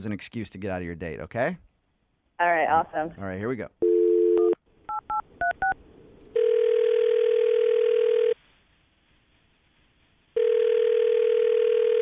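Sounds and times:
speech: 0.0s - 1.7s, 2.4s - 3.8s
telephone dial tone: 3.8s - 4.6s, 6.4s - 8.4s, 10.4s - 11.9s.

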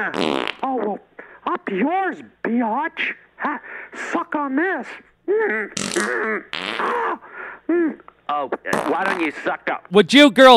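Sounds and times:
speech: 0.0s - 0.6s, 1.7s - 10.5s
fart noises: 0.0s - 0.9s, 5.8s - 7.2s, 8.6s - 9.4s.

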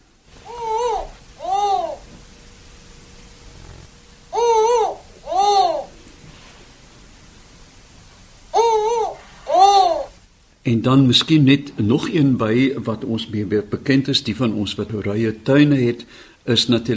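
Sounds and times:
faint steady hum: 0.0s - 16.9s
spotted eagle-owl hooting: 0.4s - 2.1s, 3.6s - 6.0s, 8.5s - 10.2s
speech: 10.7s - 16.9s.

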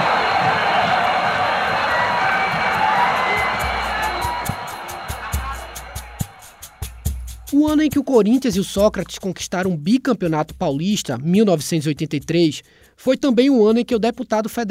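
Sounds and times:
sharp claps and bangs in a football stadium: 0.0s - 7.5s
football stadium crowd cheering a goal: 0.0s - 8.1s
speech: 7.8s - 14.7s.

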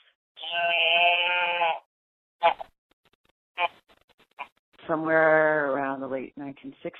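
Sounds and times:
sound mechanism inside an old stiff teddy bear bleating: 0.4s - 2.7s
speech: 4.9s - 6.9s.

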